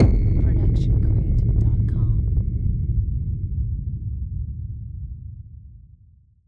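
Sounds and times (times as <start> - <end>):
distorted cinematic hit impact: 0.0 - 5.0.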